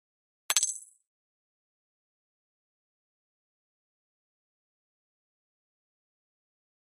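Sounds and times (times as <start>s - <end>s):
pop up element: 0.5s - 0.9s.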